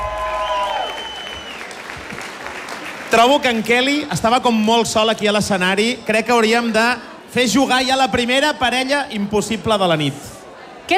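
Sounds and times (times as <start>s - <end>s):
crowd applauding loudly: 0.0s - 3.7s
speech: 3.1s - 10.3s.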